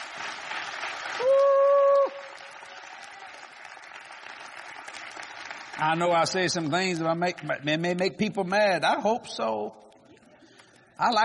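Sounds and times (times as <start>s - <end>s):
audience clapping in a large room: 0.0s - 8.8s
speech: 5.8s - 9.8s, 11.0s - 11.2s.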